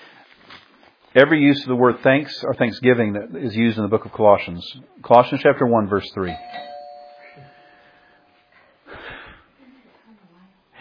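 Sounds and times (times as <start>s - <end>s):
speech: 1.2s - 6.7s
doorbell chime: 6.4s - 8.6s.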